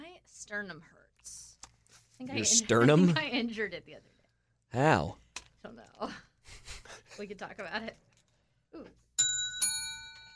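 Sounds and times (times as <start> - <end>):
speech: 0.4 - 1.4, 2.2 - 8.1, 8.7 - 9.0
two small bells dinging: 9.2 - 10.3.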